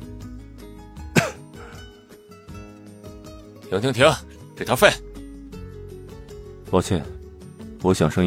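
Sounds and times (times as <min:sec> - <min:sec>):
music: 0:00.0 - 0:08.2
soft short cough from an actor on a film set: 0:01.1 - 0:01.9
speech: 0:03.7 - 0:05.1, 0:06.7 - 0:07.2, 0:07.8 - 0:08.2.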